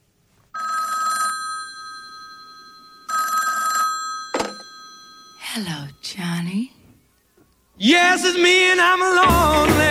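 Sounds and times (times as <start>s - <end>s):
telephone bell ringing in bright trilling bursts: 0.6s - 6.1s
speech: 5.6s - 6.8s, 7.8s - 9.9s.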